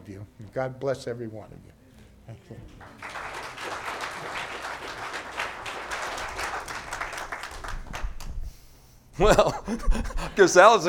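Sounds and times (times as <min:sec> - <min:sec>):
speech: 0:00.1 - 0:01.7, 0:09.2 - 0:10.8
audience applause: 0:02.8 - 0:08.4
laughter: 0:09.2 - 0:10.5.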